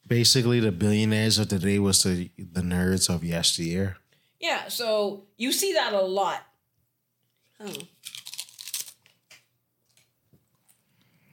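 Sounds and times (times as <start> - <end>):
speech: 0.1 - 6.5, 7.6 - 8.2
person chewing crunchy food: 7.8 - 9.1.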